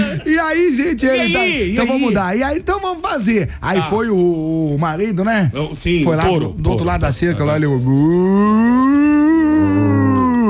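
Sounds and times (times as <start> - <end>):
speech: 0.2 - 9.8
person imitating a cow mooing: 8.0 - 10.4.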